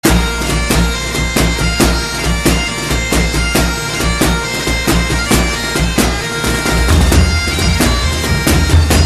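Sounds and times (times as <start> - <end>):
bad pipes: 0.0 - 9.0.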